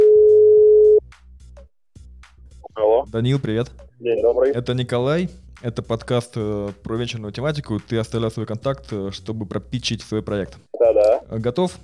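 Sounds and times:
steady single-pitched telephone dial tone while a call is placed: 0:00.0 - 0:01.0
speech: 0:03.1 - 0:11.8.

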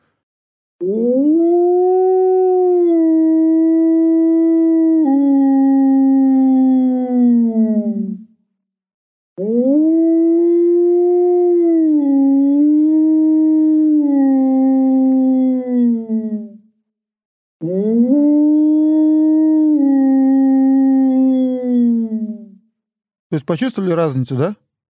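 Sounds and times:
speech: 0:00.8 - 0:01.4, 0:23.5 - 0:24.6
person imitating low-pitched polar wolf howl: 0:00.8 - 0:08.3, 0:09.4 - 0:16.6, 0:17.6 - 0:22.6.

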